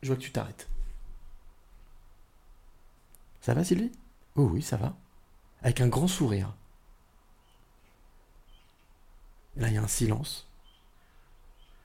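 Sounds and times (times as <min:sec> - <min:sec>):
speech: 0:00.0 - 0:00.8, 0:03.4 - 0:05.0, 0:05.6 - 0:06.6, 0:09.6 - 0:10.5
faint bird chirps outdoors: 0:07.3 - 0:09.1, 0:10.4 - 0:11.8.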